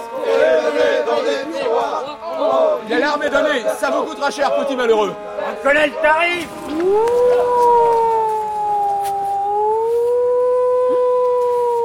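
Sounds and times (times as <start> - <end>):
island alert siren wailing: 0.0 - 11.8
rough noisy background: 0.0 - 11.8
speech: 1.2 - 7.6.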